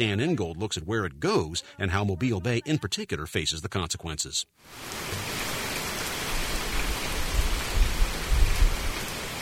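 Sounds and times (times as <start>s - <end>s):
speech: 0.0s - 5.6s
steady rain pattering on a hard surface: 4.6s - 9.3s.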